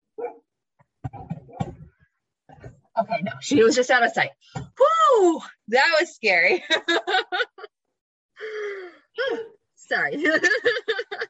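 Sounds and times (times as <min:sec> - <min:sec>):
dog yelping: 0:00.2 - 0:00.4
dog barking: 0:00.2 - 0:00.5
speech: 0:03.1 - 0:04.6, 0:05.2 - 0:07.5, 0:09.3 - 0:10.9
laughter: 0:06.6 - 0:07.7, 0:10.2 - 0:11.2.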